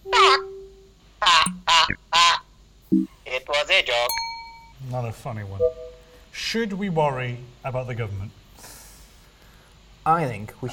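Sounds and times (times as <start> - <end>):
person imitating chicken clucking: 1.2 - 2.4
speech: 2.9 - 4.2, 4.8 - 8.4, 10.0 - 10.7.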